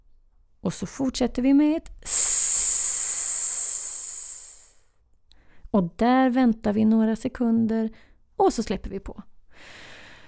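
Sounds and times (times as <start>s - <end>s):
speech: 0.6s - 2.4s, 5.7s - 9.8s
long forceful exhalation emptying the lungs: 2.0s - 4.8s.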